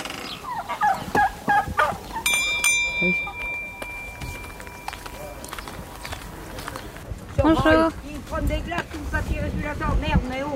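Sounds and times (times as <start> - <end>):
chickens calling as they are being tended: 0.0 - 7.0
clear ringing tone: 2.2 - 6.0
speech: 7.5 - 10.5.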